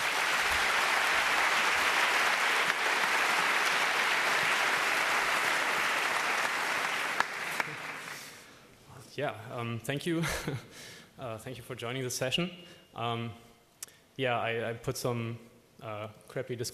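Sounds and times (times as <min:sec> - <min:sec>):
audience applause for a speaker: 0:00.0 - 0:08.5
speech: 0:09.2 - 0:13.4, 0:14.2 - 0:16.7.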